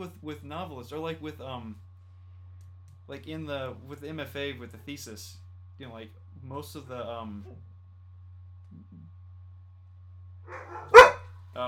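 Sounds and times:
speech: 0.0 - 1.9, 3.1 - 7.7
dog barking: 10.5 - 11.2.

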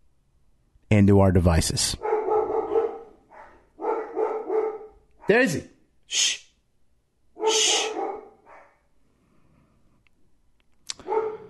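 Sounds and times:
speech: 1.0 - 2.1, 5.3 - 6.5
Labrador barking: 2.0 - 5.6, 7.4 - 8.9, 11.0 - 11.4.

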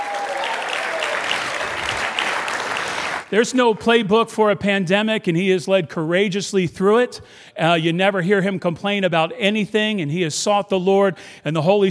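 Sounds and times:
university event audience cheering with scattered shouts: 0.0 - 2.0
university event audience applauding during a speech: 0.0 - 3.8
speech: 3.3 - 11.8.

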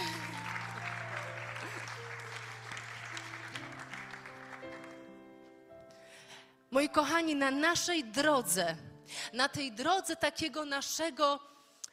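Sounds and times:
crowd applauding a male speaker: 0.0 - 5.4
speech: 6.7 - 11.5.

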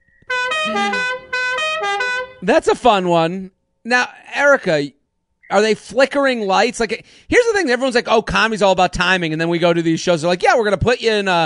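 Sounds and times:
loud boat horn blasts: 0.3 - 2.4
speech: 0.6 - 1.2, 2.4 - 11.4.

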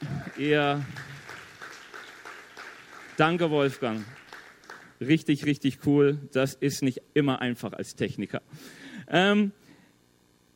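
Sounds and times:
audience applause for the technical crew: 0.0 - 5.0
speech: 0.4 - 1.0, 3.2 - 4.2, 5.0 - 9.6.

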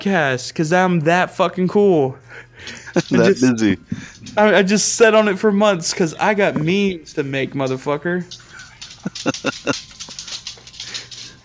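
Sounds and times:
speech: 0.0 - 8.5, 9.1 - 9.9
low hum: 0.0 - 11.4
laughter: 2.6 - 4.4, 9.0 - 10.3
pet dogs barking excitedly: 8.3 - 11.4.

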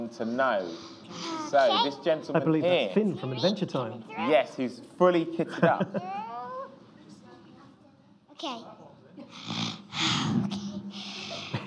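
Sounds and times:
speech: 0.0 - 6.2, 8.4 - 10.6
laughter: 5.4 - 6.3, 11.2 - 11.6
audience member doing rasping heavy breathing imitating a respirator: 9.4 - 11.6.

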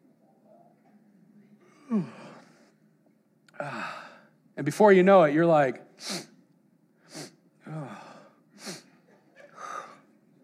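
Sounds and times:
person yawning: 1.8 - 2.4, 7.7 - 8.8
speech: 1.9 - 2.2, 4.6 - 6.3.

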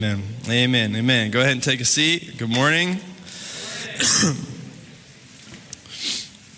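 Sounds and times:
speech: 0.0 - 3.1, 4.0 - 4.5
person coughing: 3.8 - 4.6
person clearing throat: 3.8 - 4.8.

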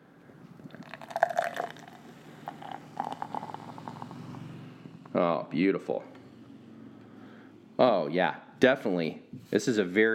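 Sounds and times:
Migration Brewing IPA being poured into a glass: 0.7 - 4.2
bubbly fizz of IPA beer: 0.7 - 4.2
speech: 5.2 - 6.2, 7.8 - 10.1.

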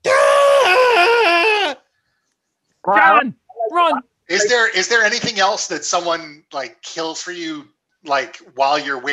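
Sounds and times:
person squealing in imitation of a lobster screaming in a boiling pot: 0.0 - 1.8, 2.9 - 4.6
speech: 2.9 - 9.1.

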